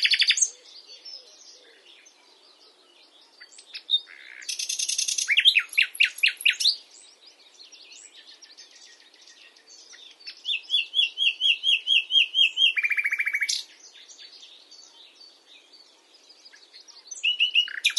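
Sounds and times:
common nightingale Luscinia megarhynchos singing: 0.0s - 17.9s.

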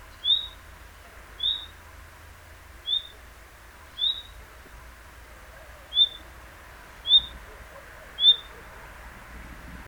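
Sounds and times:
common nightingale (Luscinia megarhynchos) whistled notes: 0.2s - 0.6s, 1.4s - 1.8s, 2.8s - 3.2s, 4.0s - 4.4s, 5.9s - 6.2s, 7.0s - 7.4s, 8.2s - 8.5s.

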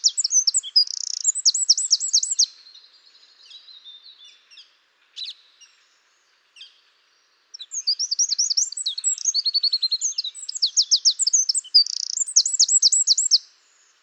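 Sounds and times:
Eurasian wren song, Troglodytes troglodytes: 0.0s - 5.8s, 7.5s - 13.9s.

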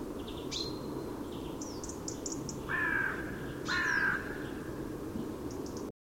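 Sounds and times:
small birds chirping: 0.1s - 5.9s
carrion crow cawing: 2.7s - 4.7s.

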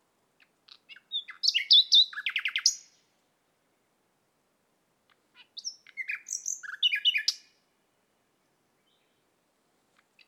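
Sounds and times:
Common nightingale Luscinia megarhynchos singing: 0.7s - 3.0s, 5.6s - 7.6s.

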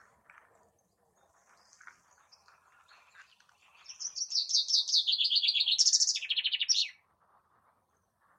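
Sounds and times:
common chaffinch Fringilla coelebs singing: 2.3s - 7.0s.

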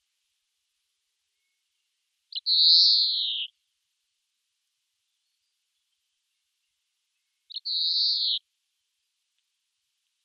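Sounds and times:
European greenfinch Chloris chloris nasal buzzing calls: 2.3s - 3.5s, 7.5s - 8.4s.

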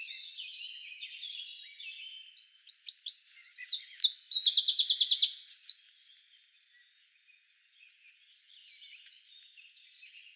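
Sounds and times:
Eurasian wren Troglodytes troglodytes singing: 1.9s - 5.9s.

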